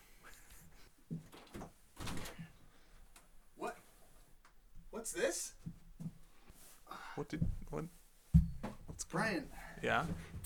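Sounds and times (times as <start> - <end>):
speech: 5.0 - 5.6, 7.2 - 8.0, 9.1 - 10.3
knocking on a door: 8.3 - 9.0.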